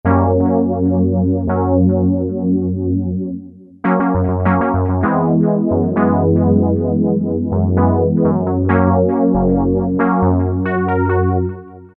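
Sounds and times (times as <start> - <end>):
tremolo synthesizer Korg MS2000: 0.1 - 11.9.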